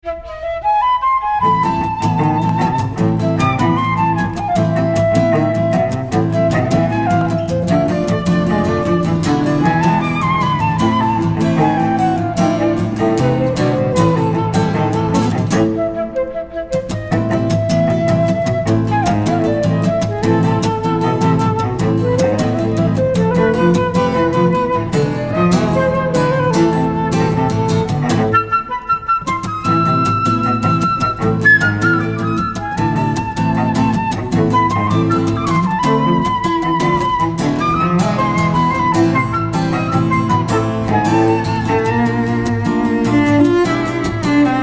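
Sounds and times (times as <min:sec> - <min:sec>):
flute: 0:00.0 - 0:44.6
guitar: 0:00.0 - 0:44.6
cello: 0:01.4 - 0:16.0, 0:17.0 - 0:28.5, 0:29.5 - 0:44.6.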